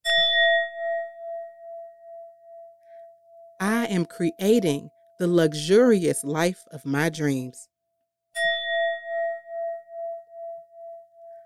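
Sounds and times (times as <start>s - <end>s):
singing bowl struck and ringing: 0.0s - 5.9s, 8.4s - 11.4s
speech: 3.9s - 7.7s.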